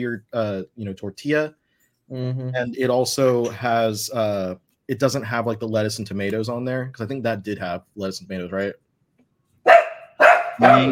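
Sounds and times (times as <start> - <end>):
speech: 0.0 - 8.8, 10.6 - 10.9
pet dog barking: 9.7 - 10.9.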